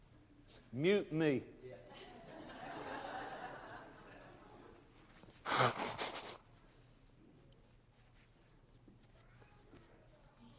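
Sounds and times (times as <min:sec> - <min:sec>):
quiet noise: 0:00.0 - 0:10.5
speech: 0:00.7 - 0:02.1, 0:05.6 - 0:05.9
laughter: 0:01.9 - 0:04.8, 0:05.5 - 0:06.4
person blowing their nose: 0:05.3 - 0:06.7.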